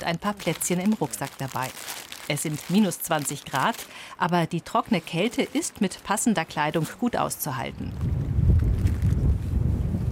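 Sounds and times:
speech: 0:00.0 - 0:08.3
strong wind over open marshland: 0:07.7 - 0:10.0.

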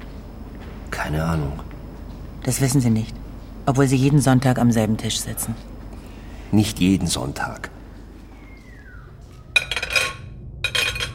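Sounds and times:
speech: 0:01.0 - 0:01.7, 0:02.4 - 0:05.7, 0:06.5 - 0:07.8
dirty dishes clinking as crockery is handled: 0:09.5 - 0:11.1.

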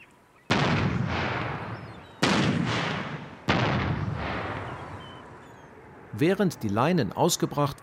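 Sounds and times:
boat-mounted acoustic cannon firing to scare birds: 0:00.5 - 0:05.4
speech: 0:06.2 - 0:07.8.

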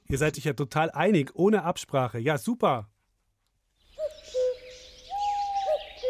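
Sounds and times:
speech: 0:00.1 - 0:02.9
birds twittering: 0:03.7 - 0:06.0
owl hooting: 0:03.9 - 0:06.0.

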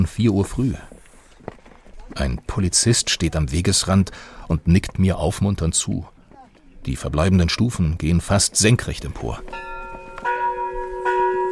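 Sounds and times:
speech: 0:00.0 - 0:00.9, 0:02.2 - 0:06.2, 0:06.8 - 0:09.7
large temple bell ringing: 0:09.3 - 0:11.5.

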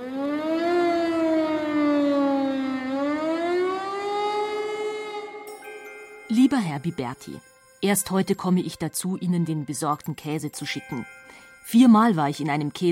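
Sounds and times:
Berlin air-raid siren wailing: 0:00.0 - 0:05.5
speech: 0:06.5 - 0:12.8.

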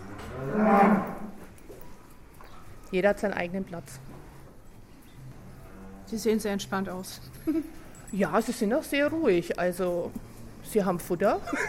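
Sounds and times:
cow mooing: 0:00.0 - 0:01.4
speech: 0:02.9 - 0:04.1, 0:06.1 - 0:11.6
laughter: 0:11.4 - 0:11.6.

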